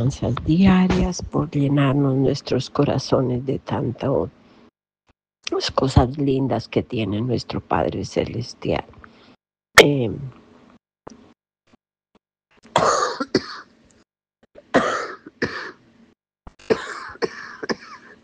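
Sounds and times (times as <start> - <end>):
speech: 0.0 - 4.4, 5.6 - 9.0, 9.8 - 10.4
harsh breathy coughing fit: 12.7 - 13.7, 14.6 - 15.8, 16.6 - 18.2.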